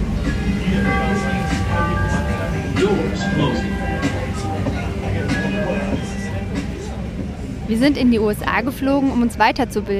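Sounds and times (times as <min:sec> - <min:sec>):
loudly played music: 0:00.0 - 0:07.4
moving commuter train carriage rumble in Chicago: 0:00.0 - 0:08.1
low mechanical drone: 0:00.0 - 0:09.2
faint tonal hum: 0:00.0 - 0:09.3
indistinct voices: 0:00.0 - 0:09.9
speech: 0:07.7 - 0:09.9.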